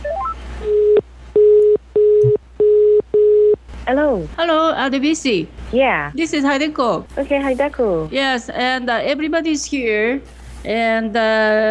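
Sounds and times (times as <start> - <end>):
quick rising telephone dial beeps as a call is placed: 0.0 - 3.6
speech: 3.9 - 11.7.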